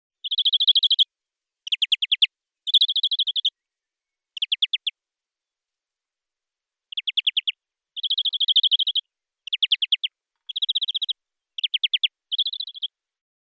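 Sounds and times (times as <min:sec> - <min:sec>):
European greenfinch Chloris chloris giving rapid pulsed trills: 0:00.2 - 0:01.0, 0:01.7 - 0:03.6, 0:04.3 - 0:04.9, 0:06.9 - 0:12.9.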